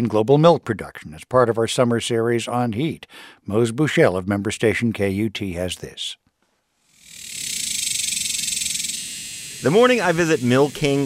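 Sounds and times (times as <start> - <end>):
speech: 0.0 - 6.2, 9.6 - 11.0
cicadas buzzing loudly: 6.9 - 11.0.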